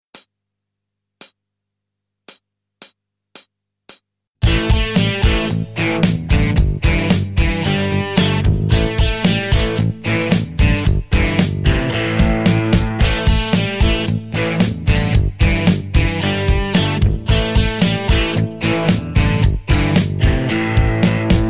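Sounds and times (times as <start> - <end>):
guitar riffs: 4.4 - 21.4.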